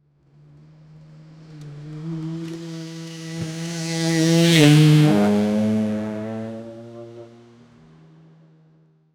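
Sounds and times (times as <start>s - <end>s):
loud motorbike passing: 0.7s - 7.9s.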